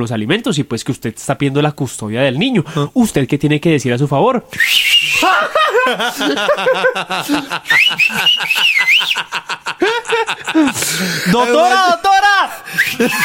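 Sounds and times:
speech: 0.0s - 13.2s
short high human whistles: 4.5s - 5.2s, 7.7s - 9.2s, 12.7s - 13.2s
snickering laughter: 5.1s - 11.6s, 12.9s - 13.2s.

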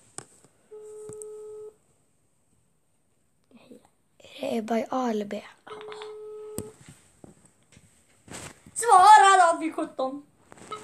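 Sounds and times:
telephone ringback tone on an outgoing call: 0.7s - 1.8s, 5.7s - 6.8s, 10.7s - 10.8s
speech: 4.5s - 5.8s, 9.6s - 10.3s.

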